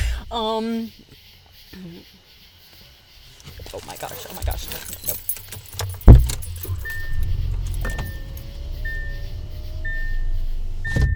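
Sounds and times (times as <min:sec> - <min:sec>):
speech: 0:00.3 - 0:02.4, 0:03.7 - 0:05.3
car engine rumbling: 0:01.1 - 0:11.1
car keys jangling: 0:03.3 - 0:11.1.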